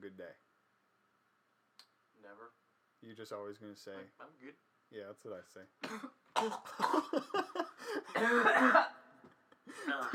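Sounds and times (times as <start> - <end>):
speech: 2.3 - 9.0, 9.7 - 10.1
person coughing while choking on their own spit: 5.8 - 7.4, 8.0 - 9.1.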